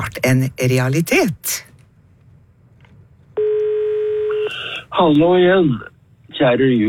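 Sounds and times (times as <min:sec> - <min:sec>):
speech: 0:00.0 - 0:01.7, 0:04.9 - 0:06.8
low hiss: 0:00.0 - 0:06.8
steady telephone tone of an incoming call: 0:03.4 - 0:04.5.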